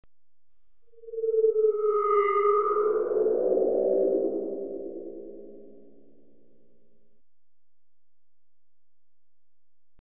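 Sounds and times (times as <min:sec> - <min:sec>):
eerie electronic noise: 0:00.9 - 0:06.2.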